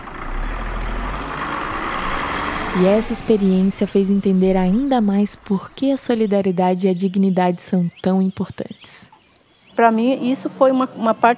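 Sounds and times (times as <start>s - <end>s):
bus engine idling: 0.0s - 8.9s
speech: 2.8s - 9.1s, 9.8s - 11.3s.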